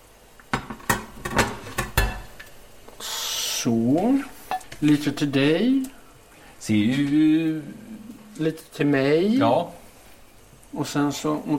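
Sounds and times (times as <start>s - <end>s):
plates clinking and knocking: 0.5s - 2.5s, 4.4s - 5.3s
speech: 3.6s - 6.0s, 6.6s - 9.8s, 10.7s - 11.5s.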